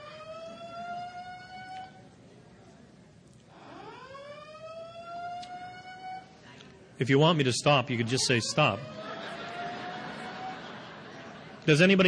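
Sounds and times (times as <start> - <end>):
emergency vehicle siren wailing outside: 0.0 - 2.0, 3.6 - 6.3, 8.0 - 10.9
speech: 7.0 - 9.4, 11.7 - 12.0
laughter: 8.0 - 12.0.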